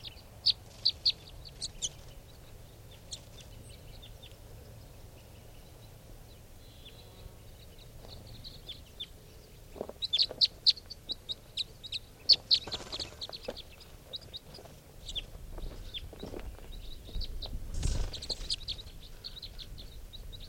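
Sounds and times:
wild birds clucking and calling outdoors around a truck: 0:00.0 - 0:20.4.

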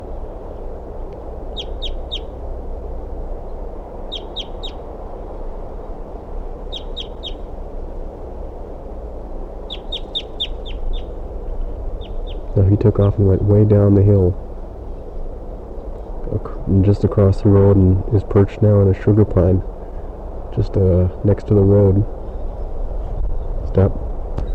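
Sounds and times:
steady low rumble: 0:00.0 - 0:24.5
male crossbill chip calls near the nest tree: 0:01.5 - 0:02.4, 0:04.0 - 0:04.8, 0:06.6 - 0:07.5, 0:09.6 - 0:11.2, 0:12.0 - 0:12.6
speech: 0:12.8 - 0:14.4, 0:16.7 - 0:19.7, 0:20.6 - 0:22.2.

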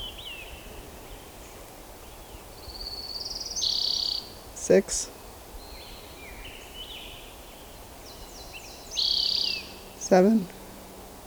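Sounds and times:
orange-crowned warbler singing: 0:00.0 - 0:11.2
speech: 0:04.7 - 0:05.2, 0:10.1 - 0:10.6.

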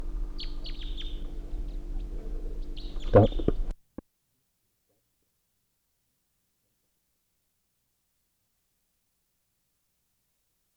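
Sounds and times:
bird chirping: 0:00.0 - 0:03.7
low engine-like hum: 0:00.0 - 0:03.7
speech: 0:03.1 - 0:03.5.

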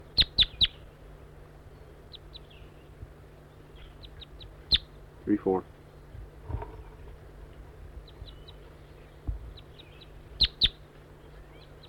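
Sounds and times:
wild bird chirping: 0:00.2 - 0:01.0, 0:01.7 - 0:05.0, 0:08.0 - 0:11.8
speech: 0:05.3 - 0:05.8.

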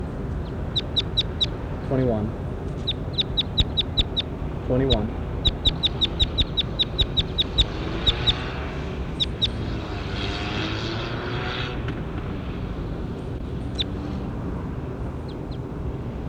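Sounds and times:
low drone of a propeller aircraft: 0:00.0 - 0:16.2
speech: 0:01.9 - 0:02.4, 0:04.7 - 0:05.2
recorded bird singing sharp high repeated notes: 0:02.8 - 0:08.4.

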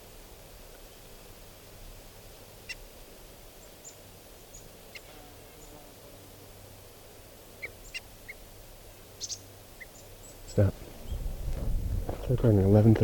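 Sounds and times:
steady low outdoor hum: 0:00.0 - 0:13.0
decoy birds giving alarm calls: 0:02.6 - 0:02.8, 0:07.6 - 0:08.5, 0:09.1 - 0:11.4
speech: 0:10.6 - 0:10.8, 0:12.3 - 0:13.0.

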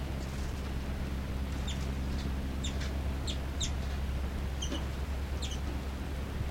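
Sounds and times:
steady low hum: 0:00.0 - 0:06.4
short high bird chirps: 0:01.6 - 0:01.8, 0:02.6 - 0:03.8, 0:04.6 - 0:05.7.

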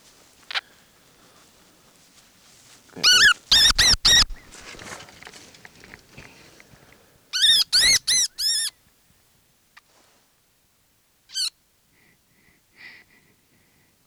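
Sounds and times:
rustling and handling noises: 0:00.0 - 0:07.2
baby wood rat squeaking: 0:03.0 - 0:04.6, 0:07.4 - 0:08.7, 0:11.3 - 0:11.5.

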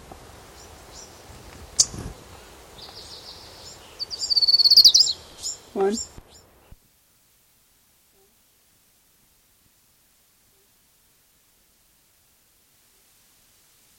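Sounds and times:
warbler singing: 0:00.5 - 0:06.7
speech: 0:05.8 - 0:06.3.

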